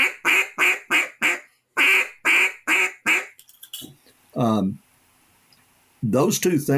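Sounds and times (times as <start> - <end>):
duck call blown as greeting calls: 0.0 - 3.4
speech: 4.4 - 4.8, 6.0 - 6.7.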